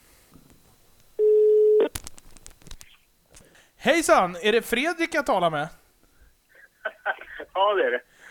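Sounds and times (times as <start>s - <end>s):
telephone ringing tone of an outgoing call: 1.2s - 1.9s
telephone line clicks and rustling noise: 1.8s - 3.4s
speech: 3.8s - 5.8s, 7.6s - 8.1s
laughter: 6.8s - 7.5s.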